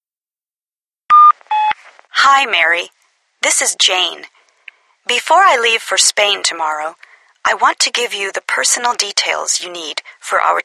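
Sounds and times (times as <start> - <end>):
answering machine electronic beep tones: 1.1 - 1.8
speech: 2.3 - 4.4, 5.0 - 10.6.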